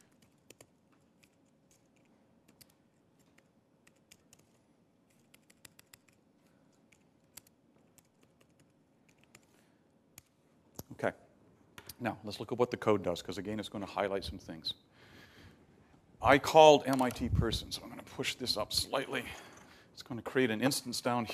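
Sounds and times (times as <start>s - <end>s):
typing on a computer keyboard: 0.0s - 6.2s, 6.9s - 9.5s
speech: 11.0s - 11.2s, 12.0s - 15.1s, 16.2s - 21.3s.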